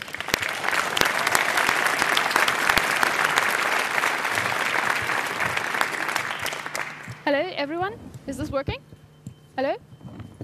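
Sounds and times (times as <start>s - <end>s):
sizable audience applauding a speaker at a climate change talk: 0.0s - 7.3s
speech: 7.3s - 8.9s, 9.6s - 9.9s.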